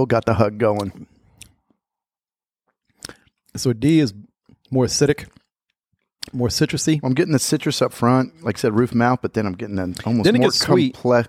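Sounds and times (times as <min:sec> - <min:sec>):
speech: 0:00.0 - 0:01.1, 0:03.6 - 0:05.4, 0:06.2 - 0:11.2
faint lip and swallowing noises: 0:02.9 - 0:03.2
person sipping a drink: 0:03.0 - 0:03.3.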